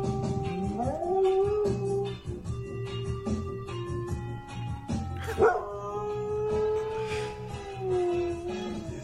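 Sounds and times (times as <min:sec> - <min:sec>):
bearded collie howling along to music: 0:00.0 - 0:02.3, 0:05.2 - 0:09.0
music: 0:00.0 - 0:09.0.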